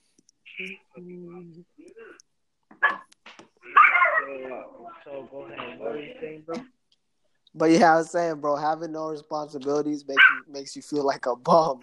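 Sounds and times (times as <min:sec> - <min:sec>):
speech: 0:00.6 - 0:01.9, 0:04.3 - 0:06.7, 0:07.6 - 0:11.8
puppy yipping and barking: 0:02.8 - 0:03.1, 0:03.7 - 0:04.4, 0:10.2 - 0:10.5.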